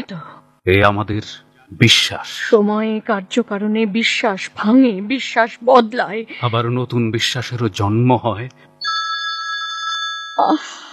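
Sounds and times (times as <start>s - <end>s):
speech: 0.1s - 8.7s, 10.4s - 10.9s
telephone bell ringing: 8.8s - 10.9s.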